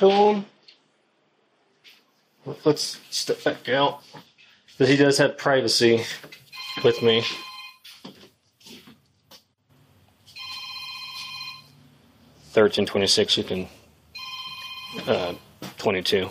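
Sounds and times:
speech: 0.0s - 0.5s, 2.4s - 8.2s, 12.6s - 13.8s, 14.9s - 16.2s
phone ringtone of layered electronic tones: 6.6s - 7.8s, 10.4s - 11.8s, 14.2s - 15.5s.

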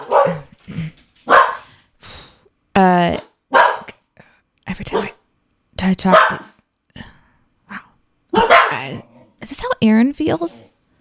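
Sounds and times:
dogs barking: 0.0s - 0.6s, 1.2s - 1.7s, 3.5s - 4.0s, 4.9s - 5.2s, 6.1s - 6.6s, 8.3s - 9.0s
speech: 3.0s - 3.2s, 5.9s - 6.5s, 9.8s - 10.8s.

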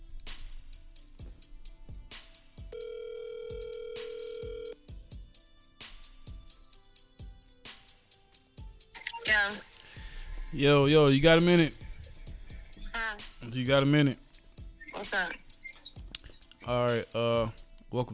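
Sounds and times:
soft rhythmic clicks and thumps: 0.0s - 18.1s
telephone call ringback tone: 2.7s - 4.8s
speech: 10.6s - 11.8s, 13.6s - 14.2s, 16.7s - 18.1s.

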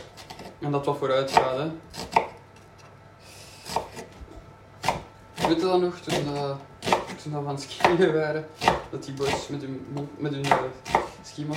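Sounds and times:
speech: 0.6s - 2.0s, 5.5s - 11.5s
knife chopping food on a cutting board: 1.3s - 2.4s, 3.6s - 4.2s, 4.8s - 11.5s.

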